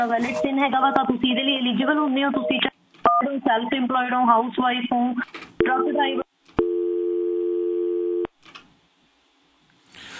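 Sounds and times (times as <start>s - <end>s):
speech: 0.0s - 6.2s
faint low noise: 0.0s - 10.1s
telephone tone of a disconnected phone call: 6.6s - 8.3s.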